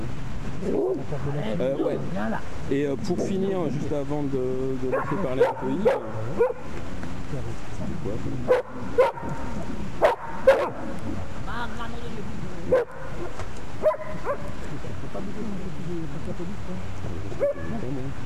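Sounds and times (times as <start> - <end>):
speech: 0.6 - 10.0, 10.6 - 18.2
dogs barking in short sharp yaps: 4.9 - 6.7, 8.5 - 11.0, 12.7 - 14.6, 17.4 - 17.7.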